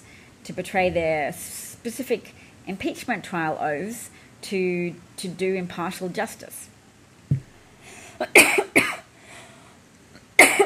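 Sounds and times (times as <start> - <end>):
speech: 0.4 - 6.7, 8.2 - 8.6
harsh fit of coughing: 8.2 - 9.0, 10.4 - 10.6.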